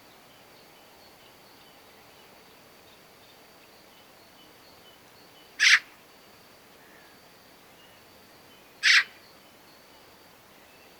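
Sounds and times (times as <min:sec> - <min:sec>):
Eurasian magpie Pica pica scratchy rasping calls: 0:08.8 - 0:09.1.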